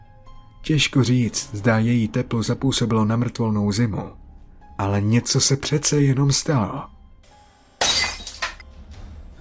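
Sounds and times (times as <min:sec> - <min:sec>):
speech: 0:00.6 - 0:04.2, 0:04.8 - 0:07.0
glass shards tinkling: 0:07.8 - 0:08.6
kerosene lamp glass shattering: 0:07.8 - 0:08.6.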